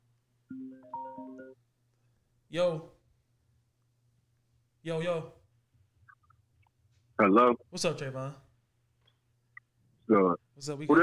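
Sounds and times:
electronic phone ringtone of an incoming call: 0.5s - 1.6s
speech: 2.5s - 2.9s, 4.8s - 5.4s, 7.2s - 8.4s, 10.1s - 11.0s.

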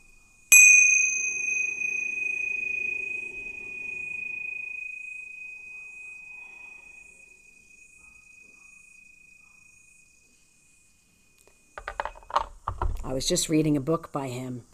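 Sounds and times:
meditation bell ringing: 0.5s - 10.3s
speech: 13.1s - 14.7s.

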